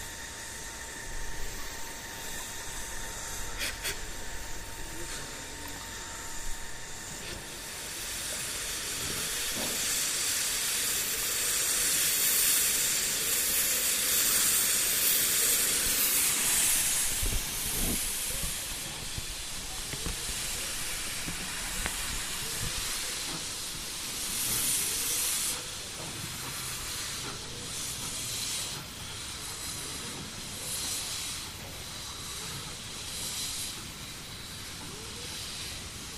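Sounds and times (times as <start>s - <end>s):
steam locomotive hissing steam before shunting: 0.0s - 36.1s.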